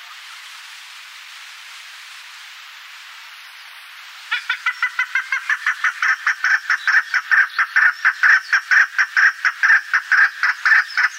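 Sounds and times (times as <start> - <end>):
Alectoris chukar chuk calls: 4.3 - 11.1.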